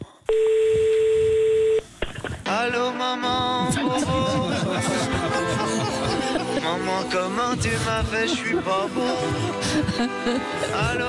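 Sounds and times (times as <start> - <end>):
speech: 0.3 - 0.6, 2.5 - 11.0
telephone line tone while calling a hotline: 0.3 - 1.8
laughter: 3.5 - 11.0.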